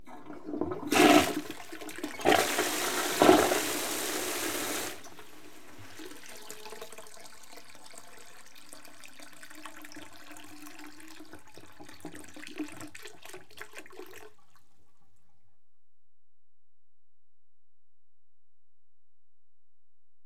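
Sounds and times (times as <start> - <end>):
toilet flushing: 0.0 - 14.4.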